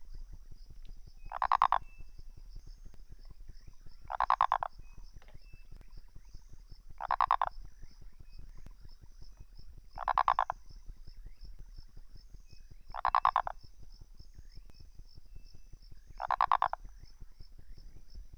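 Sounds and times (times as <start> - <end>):
Phyllomedusa sauvagii frog calling: 0.8 - 8.6, 9.9 - 11.0, 12.8 - 13.8, 15.6 - 18.2.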